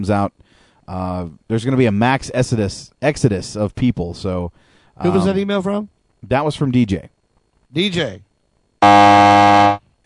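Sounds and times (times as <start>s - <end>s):
speech: 0.0s - 9.7s
game-show style buzzer: 8.8s - 9.8s.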